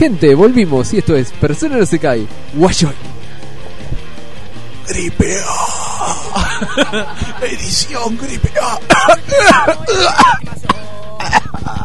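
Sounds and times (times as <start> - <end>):
speech: 0.0 - 3.2, 4.9 - 11.8
laughter: 6.0 - 11.8
harsh voiced coughing into a microphone: 8.5 - 11.8
throat clearing: 8.9 - 11.8.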